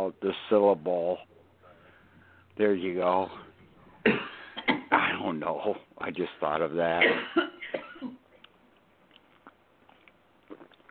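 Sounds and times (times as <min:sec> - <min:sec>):
speech: 0:00.1 - 0:01.3, 0:02.6 - 0:04.3, 0:05.0 - 0:08.2
quieter rasp: 0:01.6 - 0:02.5
single sharp cough: 0:04.0 - 0:05.3, 0:07.0 - 0:08.2.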